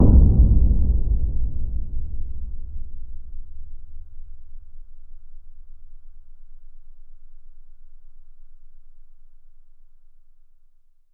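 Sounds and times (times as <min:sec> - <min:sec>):
oil convector heater hit: 0:00.0 - 0:04.4.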